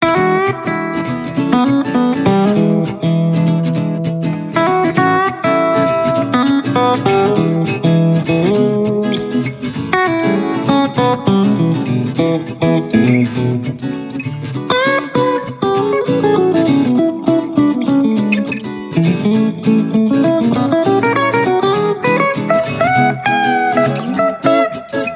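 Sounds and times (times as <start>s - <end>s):
country guitar ringtone: 0.0s - 25.1s.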